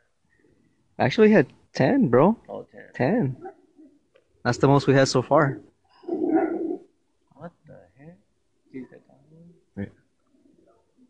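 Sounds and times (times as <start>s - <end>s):
speech: 1.0s - 3.6s, 4.4s - 5.7s, 9.8s - 10.0s
dog barking and yelping: 6.2s - 6.8s.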